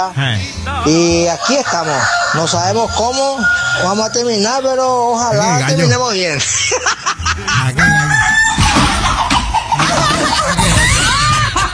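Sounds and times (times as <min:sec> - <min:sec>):
speech: 0:00.0 - 0:08.0
rooster crowing: 0:01.2 - 0:05.0, 0:07.8 - 0:11.7
faint laughter: 0:06.4 - 0:11.7.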